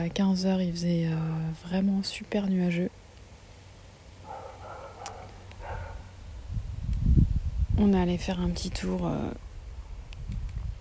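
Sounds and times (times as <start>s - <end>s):
speech: 0.0s - 3.0s, 7.8s - 9.5s
dog barking: 4.2s - 6.2s
outdoor wind rumble: 4.2s - 10.8s.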